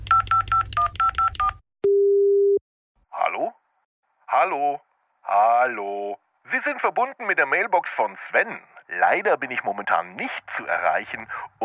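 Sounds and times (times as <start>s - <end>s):
telephone keypad dialing tones: 0.0s - 2.6s
steady unbroken telephone tone: 1.0s - 2.6s
speech: 4.4s - 11.6s.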